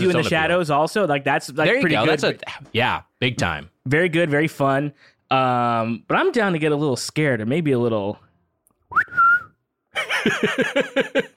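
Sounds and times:
speech: 0:00.0 - 0:08.2, 0:10.0 - 0:11.3
wolf whistle: 0:08.9 - 0:09.6
laughter: 0:10.0 - 0:11.3.

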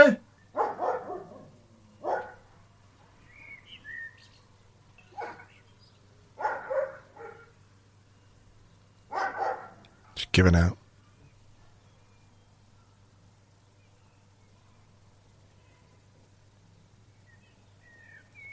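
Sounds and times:
birds chirping faintly: 0:00.0 - 0:18.5
dog barking: 0:00.5 - 0:02.5, 0:05.1 - 0:05.5, 0:06.4 - 0:07.6, 0:09.1 - 0:09.8
speech: 0:10.4 - 0:10.8.

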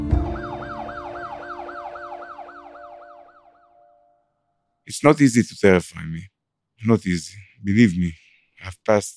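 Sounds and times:
ambulance siren wailing as the ambulance speeds off: 0:00.1 - 0:04.0
speech: 0:04.9 - 0:09.1.

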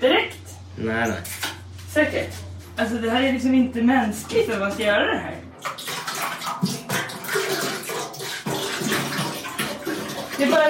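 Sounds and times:
speech: 0:00.8 - 0:01.4, 0:02.0 - 0:05.5, 0:10.4 - 0:10.6
liquid pouring into water: 0:05.6 - 0:10.6.

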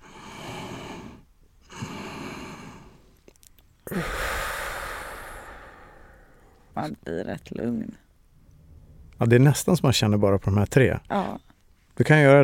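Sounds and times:
deep breathing in through the nose and out through the mouth: 0:00.0 - 0:03.2, 0:03.8 - 0:06.8
speech: 0:03.9 - 0:04.2, 0:06.8 - 0:08.0, 0:09.2 - 0:12.4.

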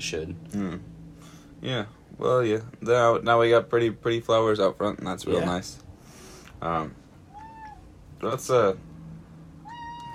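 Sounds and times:
speech: 0:00.0 - 0:01.0, 0:01.6 - 0:05.8, 0:06.6 - 0:07.0, 0:08.2 - 0:08.9
cat meowing loudly: 0:07.3 - 0:07.9, 0:09.6 - 0:10.1.

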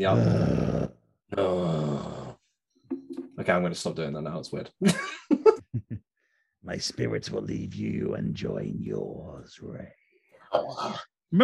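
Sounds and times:
speech: 0:00.0 - 0:00.6, 0:01.3 - 0:01.8, 0:03.4 - 0:05.5, 0:06.7 - 0:11.4
person groaning: 0:00.0 - 0:02.4.

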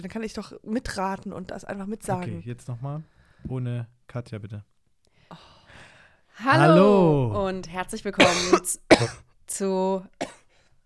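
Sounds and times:
speech: 0:00.0 - 0:04.7, 0:06.4 - 0:10.4
woman coughing: 0:08.2 - 0:09.3, 0:10.2 - 0:10.5.

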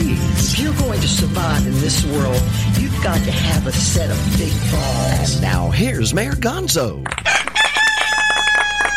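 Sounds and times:
speech: 0:00.6 - 0:07.4
rooster crowing: 0:07.3 - 0:08.9.

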